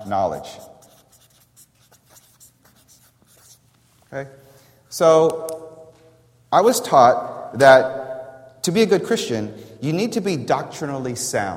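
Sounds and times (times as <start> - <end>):
speech: 0.0 - 0.7, 4.1 - 5.6, 6.5 - 8.0, 8.6 - 11.5
scratchy writing strokes: 0.3 - 3.8.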